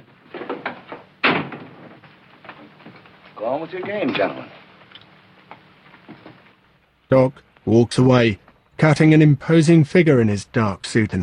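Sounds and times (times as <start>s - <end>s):
saloon door opening and closing: 0.0s - 2.8s
saloon door bang: 1.2s - 2.0s
speech: 3.4s - 4.6s, 7.1s - 11.2s.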